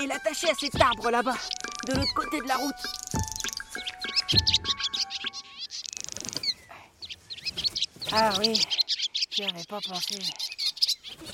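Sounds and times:
speech: 0.0 - 3.3, 8.1 - 8.8, 9.4 - 10.5
swallows twittering in overlapping chirps: 0.0 - 11.3
soft low thumps: 0.7 - 4.8.

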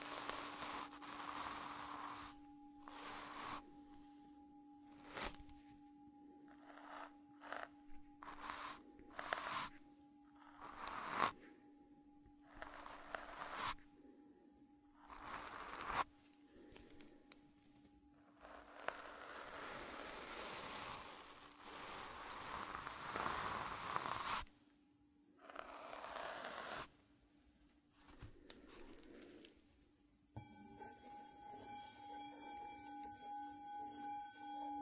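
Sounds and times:
brushes, foam and burlap sweeping in scratchy strokes: 0.0 - 5.9, 6.5 - 11.6, 12.4 - 13.9, 15.1 - 24.5, 25.5 - 27.0
Tibetan singing bowl humming with low tone and ringing overtone: 0.0 - 24.0, 30.4 - 34.8.

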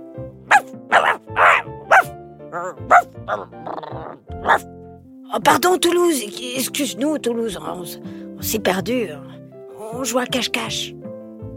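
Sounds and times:
dog barking: 0.5 - 3.5, 4.4 - 4.6
dog yelping: 0.5 - 4.6
speech: 2.7 - 4.8, 5.4 - 11.0.

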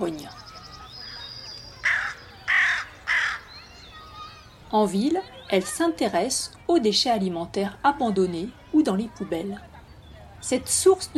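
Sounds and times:
crow cawing: 1.8 - 3.5
speech: 4.7 - 9.7, 10.4 - 11.1.

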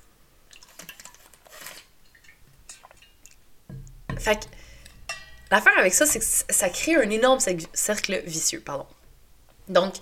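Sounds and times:
small sip of water: 0.5 - 8.2
dull knock: 3.7 - 4.6
speech: 4.2 - 4.7, 5.5 - 9.0, 9.7 - 10.0.

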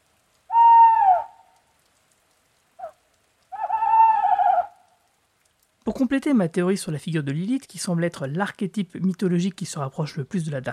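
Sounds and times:
owl hooting: 0.5 - 1.4, 2.8 - 4.8
speech: 6.0 - 10.7.

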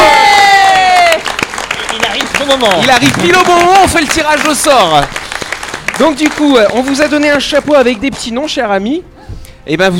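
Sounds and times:
loud cheering whoop gliding downward in pitch: 0.0 - 1.2
scattered applause: 0.0 - 8.4
crowd background: 0.0 - 9.9
speech: 2.5 - 5.2, 5.9 - 9.9.

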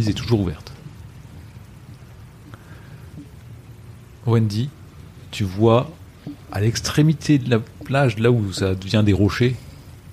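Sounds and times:
speech: 0.0 - 0.7, 4.3 - 9.6
steady rain falling: 0.0 - 10.1.

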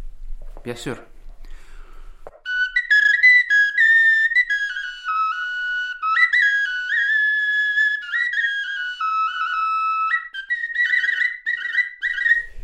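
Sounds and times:
speech: 0.6 - 1.1
bone flute playing a slow melody: 2.4 - 12.6.

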